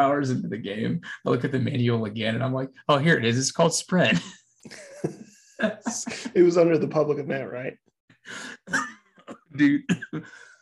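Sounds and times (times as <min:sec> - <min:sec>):
speech: 0:00.0 - 0:10.5
laughter: 0:04.1 - 0:07.6
person coughing: 0:08.6 - 0:10.4.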